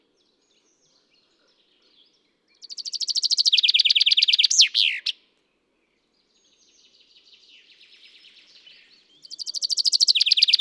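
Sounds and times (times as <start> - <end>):
Common chaffinch singing: 2.6 - 5.2, 9.2 - 10.5.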